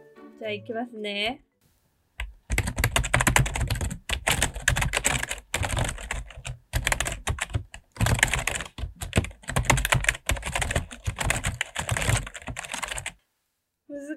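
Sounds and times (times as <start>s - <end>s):
speech: 0.4s - 1.5s
desktop computer keyboard keys being typed: 2.2s - 13.1s.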